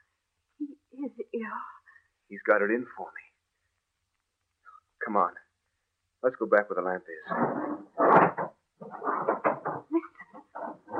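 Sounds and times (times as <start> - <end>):
speech: 0.6 - 3.3, 5.0 - 5.4, 6.2 - 10.1
heavy furniture scraping and bumping against a door: 7.3 - 9.9, 10.6 - 10.9.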